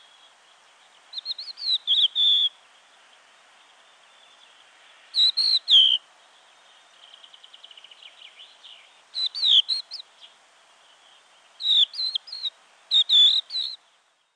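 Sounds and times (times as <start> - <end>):
crested lark calling: 1.1 - 2.6, 5.1 - 6.0, 9.2 - 10.1, 11.6 - 13.8.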